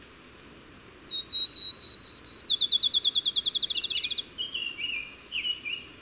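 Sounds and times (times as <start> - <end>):
bird singing high whistles and a rapid trill: 1.1 - 5.6.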